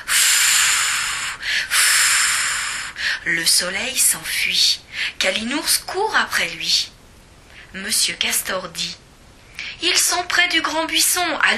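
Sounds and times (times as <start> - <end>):
breathy blowing effect for a children's-story character blowing at the sun: 0.0 - 3.3
speech: 3.2 - 7.0, 7.7 - 9.0, 9.8 - 11.5.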